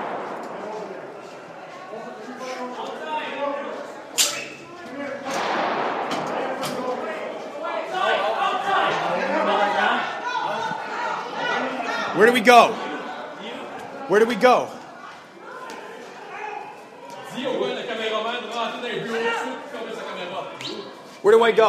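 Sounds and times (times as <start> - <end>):
sharp loud gunshot-like cracks: 0.0 - 1.5, 5.2 - 7.2
agitated crowd chatter and voices: 0.0 - 21.6
speech: 12.2 - 12.8, 14.1 - 14.8, 21.3 - 21.6.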